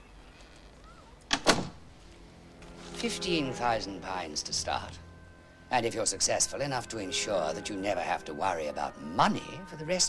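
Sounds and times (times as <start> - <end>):
door swinging shut: 1.3 - 1.8
speech: 3.0 - 5.1, 5.7 - 10.0.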